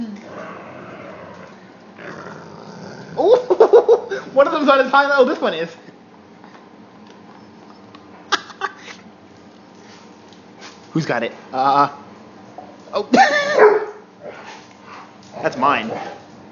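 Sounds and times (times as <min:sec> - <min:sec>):
dog growling over a bone: 0:00.1 - 0:04.3
speech: 0:04.4 - 0:05.9, 0:11.0 - 0:12.0, 0:12.9 - 0:13.7, 0:15.4 - 0:16.2
dog barking: 0:13.6 - 0:14.0.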